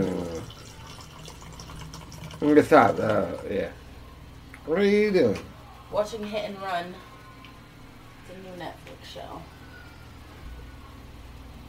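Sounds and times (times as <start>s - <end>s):
liquor pouring into a shot glass: 0.0s - 3.7s
speech: 2.4s - 3.8s, 4.7s - 7.1s, 8.3s - 9.5s.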